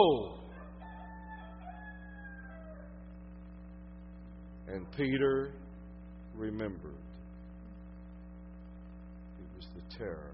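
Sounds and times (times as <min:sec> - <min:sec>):
speech: 0:00.0 - 0:00.4, 0:04.7 - 0:05.7, 0:06.4 - 0:07.1, 0:09.8 - 0:10.3
steady low electrical hum: 0:00.0 - 0:10.3
rooster crowing: 0:00.2 - 0:03.1.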